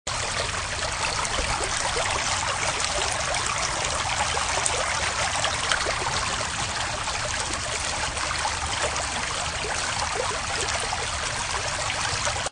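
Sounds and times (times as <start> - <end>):
urban park creek flowing: 0.1 - 12.5.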